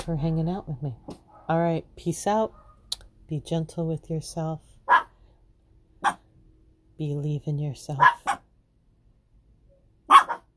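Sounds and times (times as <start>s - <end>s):
speech: 0.0s - 2.6s, 3.3s - 4.7s, 7.0s - 8.2s
chihuahua high-pitched double bark: 4.9s - 5.1s, 6.0s - 6.2s, 8.0s - 8.5s, 10.1s - 10.5s.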